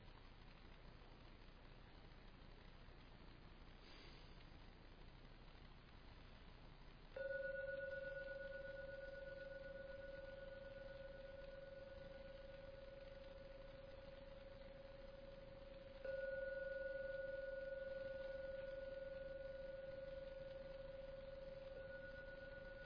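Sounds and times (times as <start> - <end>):
meditation gong struck and ringing: 7.2 - 22.8.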